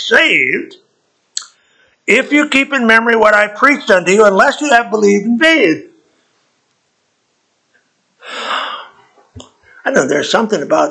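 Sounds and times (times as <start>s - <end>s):
speech: 0.0s - 0.8s, 2.1s - 5.9s, 9.8s - 10.8s
sharp breathy pre-sneeze inhale: 8.2s - 9.1s.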